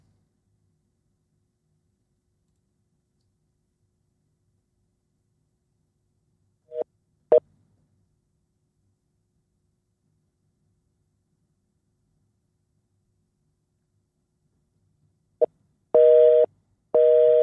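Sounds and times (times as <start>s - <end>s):
telephone busy signal beeps on a voice call: 16.0s - 17.4s.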